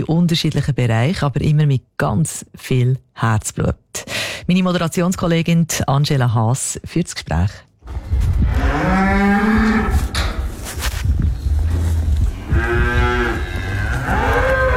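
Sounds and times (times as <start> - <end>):
speech: 0.0 - 9.2
cows mooing while brought from pasture into barn: 8.5 - 10.2, 11.7 - 14.7.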